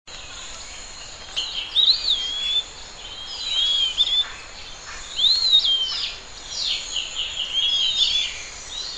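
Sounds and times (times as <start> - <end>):
bird song with bright whistled slurs and quick chirping notes: 0.1 - 8.9
constant high-pitched background hiss: 0.1 - 8.9.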